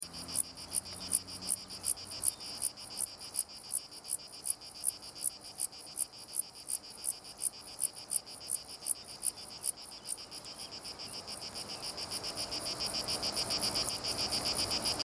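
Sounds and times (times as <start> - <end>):
Zeuneriana marmorata bush cricket singing: 0.0 - 15.0.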